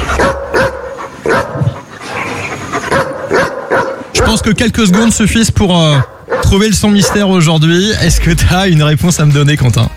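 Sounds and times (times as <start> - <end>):
dog barking: 0.1 - 5.2, 5.9 - 7.5
speech: 4.3 - 9.9.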